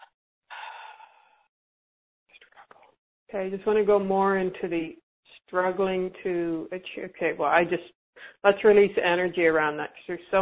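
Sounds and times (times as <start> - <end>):
deep airy breath in and out during a guided relaxation exercise: 0.0 - 1.5
speech: 3.3 - 10.3.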